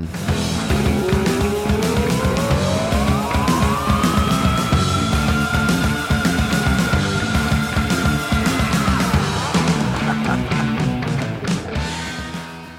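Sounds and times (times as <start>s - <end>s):
loud dense heavy metal guitars: 0.0s - 12.7s
rock singer screaming a piercing high note: 0.9s - 10.7s
laughter: 8.4s - 11.4s.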